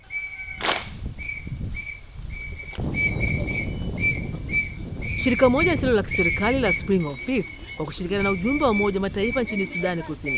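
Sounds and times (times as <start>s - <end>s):
whistle blasts leading a girls' acrobatic marching drill in South Sudan: 0.0s - 10.3s
sharp crack: 0.6s - 1.0s
speech: 5.2s - 10.3s.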